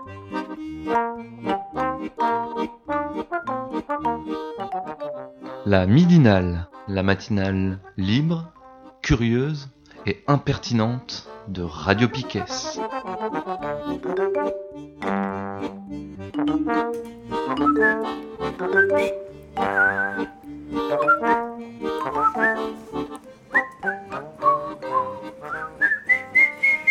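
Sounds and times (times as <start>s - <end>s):
musical accompaniment: 0.0s - 26.8s
speech: 0.4s - 2.4s, 5.7s - 12.8s
person whistling a melody: 17.3s - 26.8s.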